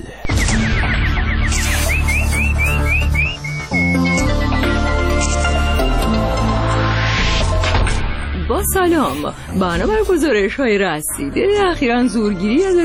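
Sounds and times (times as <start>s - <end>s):
steady throbbing musical backing: 0.2s - 12.8s
nightingale singing bright rising chirps and trills: 0.3s - 5.3s
speech: 8.6s - 12.8s.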